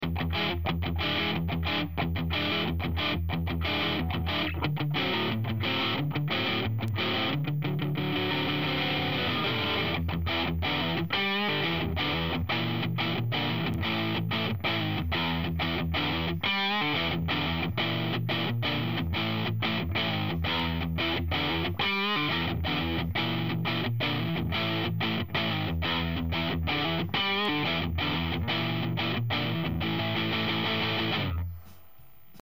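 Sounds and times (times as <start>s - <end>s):
Epiphone LP 100 electric guitar riff through Frontman 212R amplifier: 0.0s - 31.8s.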